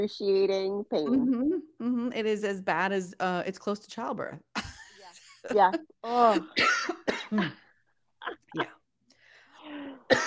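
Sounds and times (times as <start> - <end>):
speech: 0.0 - 4.5, 5.4 - 7.6, 8.2 - 8.8, 9.7 - 10.2
loud harsh coughing fit: 6.1 - 8.7, 9.9 - 10.2.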